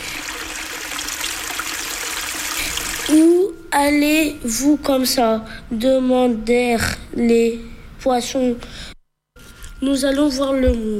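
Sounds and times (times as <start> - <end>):
trickling stream water: 0.0 - 3.2
speech: 3.1 - 8.9, 9.8 - 10.9.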